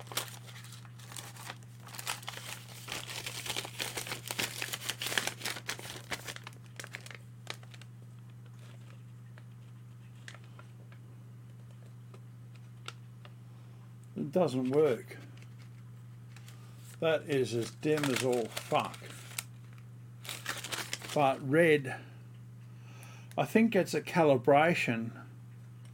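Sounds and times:
paper crinkling and rustling used to filter a red light: 0:00.0 - 0:10.7, 0:14.6 - 0:21.4
steady low electrical hum: 0:00.0 - 0:25.9
speech: 0:14.2 - 0:15.2, 0:17.0 - 0:19.2, 0:21.2 - 0:22.1, 0:23.4 - 0:25.1.

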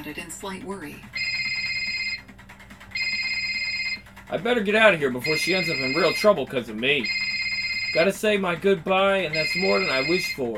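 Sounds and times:
speech: 0:00.0 - 0:01.3, 0:04.3 - 0:07.2, 0:07.9 - 0:10.5
telephone ringing with a bright electronic trill: 0:00.8 - 0:10.5.

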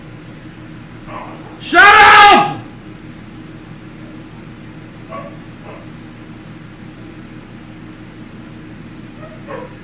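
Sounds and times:
dog barking: 0:01.0 - 0:01.6, 0:05.0 - 0:06.0, 0:09.1 - 0:09.8.

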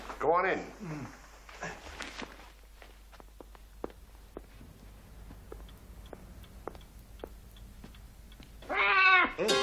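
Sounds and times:
footsteps: 0:00.0 - 0:08.6
speech: 0:00.2 - 0:01.8
soft taps: 0:03.4 - 0:08.6
cat meowing: 0:08.6 - 0:09.5.

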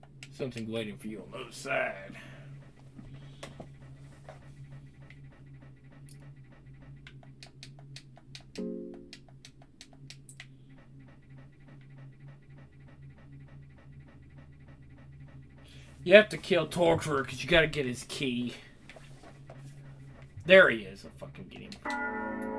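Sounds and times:
speech: 0:00.4 - 0:02.3, 0:16.1 - 0:18.7, 0:20.5 - 0:22.4
heavy rhythmic breathing: 0:01.1 - 0:07.1, 0:10.4 - 0:21.3.

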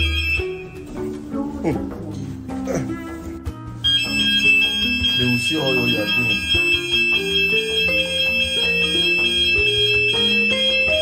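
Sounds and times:
elevator alarm bell ringing in shrill bursts in a lift: 0:00.0 - 0:01.1, 0:03.8 - 0:11.0
speech: 0:01.6 - 0:02.0, 0:05.2 - 0:06.6.

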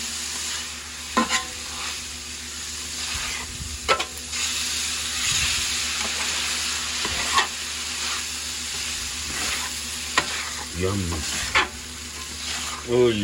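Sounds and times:
heavily seasoned food sizzling in a hot pan: 0:00.0 - 0:13.2
utensil scraping and clacking against the pan: 0:00.4 - 0:02.1, 0:03.0 - 0:04.6, 0:05.2 - 0:13.2
speech: 0:10.8 - 0:11.6, 0:12.8 - 0:13.2.

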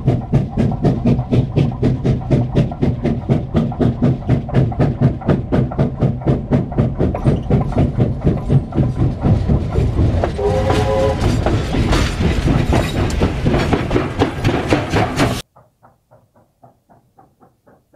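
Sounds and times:
coal train freight wagons rolling on rails: 0:00.0 - 0:17.9
coal train horn-like tone: 0:10.4 - 0:11.4.

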